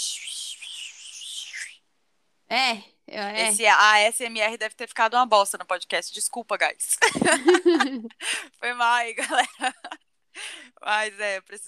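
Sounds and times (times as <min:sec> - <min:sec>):
voice making a breathy shushing hiss imitating white noise: 0:00.0 - 0:01.8
speech: 0:02.5 - 0:10.0, 0:10.8 - 0:11.6
laughter: 0:07.1 - 0:08.1.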